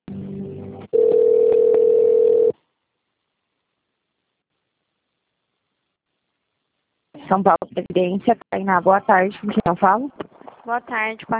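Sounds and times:
telephone tone while a call is being transferred: 0.9s - 2.6s
speech: 7.3s - 11.3s.

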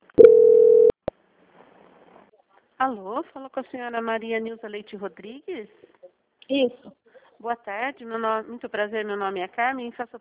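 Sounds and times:
telephone line beep while a call is being transferred: 0.2s - 0.9s
speech: 2.8s - 10.2s.

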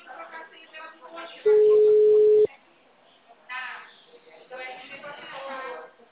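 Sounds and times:
narrow phone-like voices talking: 0.9s - 2.5s
telephone call tone ringing as a mid-pitched beep: 1.5s - 2.5s.

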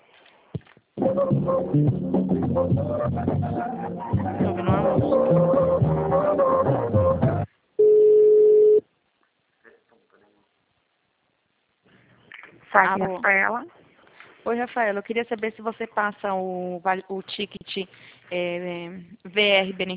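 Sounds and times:
speech: 1.1s - 7.2s, 12.7s - 13.8s, 14.4s - 19.9s
telephone line tones on a call being transferred: 7.8s - 8.8s.

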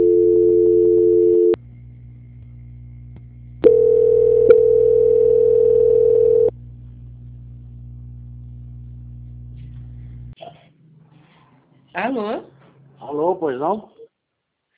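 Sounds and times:
telephone line tone during a call transfer: 0.0s - 1.6s, 3.6s - 6.5s
steady low hum: 0.0s - 11.9s
speech: 13.4s - 14.0s.

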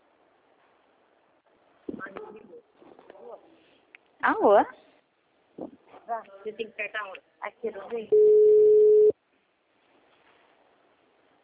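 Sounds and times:
speech: 4.2s - 4.8s, 6.1s - 8.8s
telephone tone after a dropped call: 8.1s - 9.1s.

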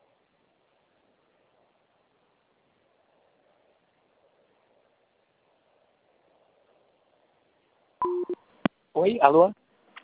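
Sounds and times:
telephone line beeps after a dropped call: 8.0s - 8.4s
speech: 9.0s - 9.6s.

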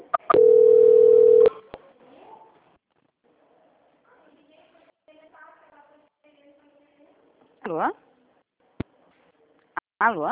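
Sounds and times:
steady mid-pitched telephone tone during a call transfer: 0.3s - 1.6s
speech: 7.7s - 8.0s, 10.0s - 10.3s.

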